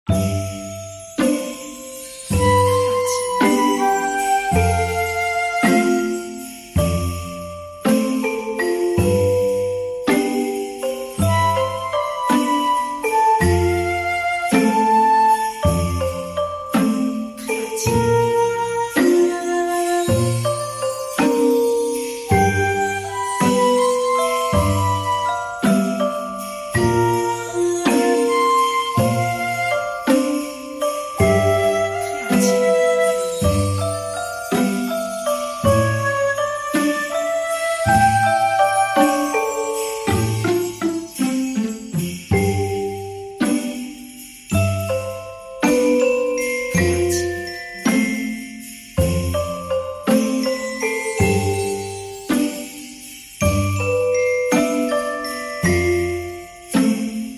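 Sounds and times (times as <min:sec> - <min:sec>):
flute playing a Christmas tune: 0:00.1 - 0:57.1.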